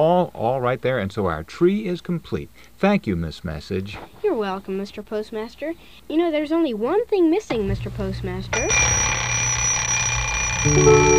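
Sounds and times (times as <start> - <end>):
speech: 0.0 - 9.2, 10.6 - 11.1
novelty clock ringing: 8.5 - 11.1.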